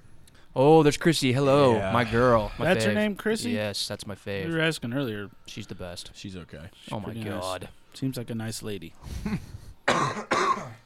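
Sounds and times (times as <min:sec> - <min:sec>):
speech: 0:00.6 - 0:10.1
person coughing harshly: 0:09.3 - 0:10.8.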